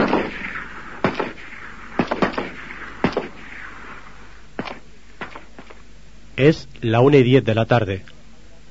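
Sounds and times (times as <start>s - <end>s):
sharp gunshots: 0.0s - 5.7s
steady hissing background: 0.0s - 8.6s
speech: 6.4s - 8.1s.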